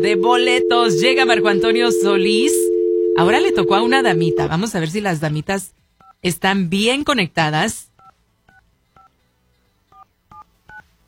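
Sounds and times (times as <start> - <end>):
telephone keypad dialing tones: 0.0 - 4.5
speech: 0.0 - 7.9.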